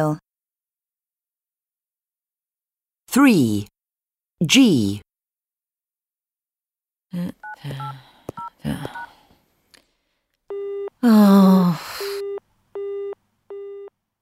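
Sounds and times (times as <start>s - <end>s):
speech: 0.0s - 0.2s, 3.1s - 3.7s, 4.4s - 5.1s, 7.1s - 9.0s, 11.0s - 12.2s
loud gasp-like voice: 7.1s - 9.4s
short breathy vocal sounds: 7.1s - 10.1s
telephone dialing tones: 7.4s - 9.1s, 12.0s - 13.9s
engaged busy signal: 11.9s - 13.9s.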